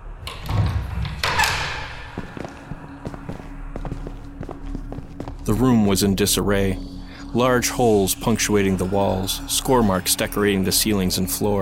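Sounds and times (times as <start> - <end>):
low hum: 0.0 - 11.6
large heavy iron door grinding open: 0.2 - 2.4
speech: 5.5 - 11.6.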